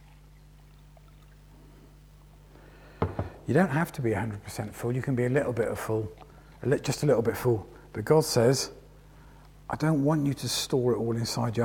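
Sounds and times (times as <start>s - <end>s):
liquid poured from one container into another: 0.0s - 2.7s
steady low hum: 0.1s - 11.6s
speech: 3.5s - 8.8s, 9.7s - 11.6s.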